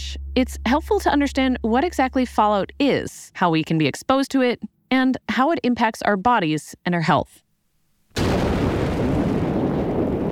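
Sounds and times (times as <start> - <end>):
speech: 0.4 - 7.4
nuclear explosion blast with deep rumbling roar: 8.2 - 10.3.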